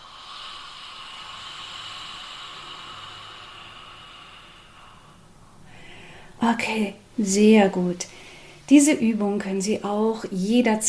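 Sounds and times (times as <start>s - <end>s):
deep breath in through the nose and out through a wide-open mouth: 0.0s - 6.4s, 8.1s - 8.7s
speech: 6.4s - 10.8s.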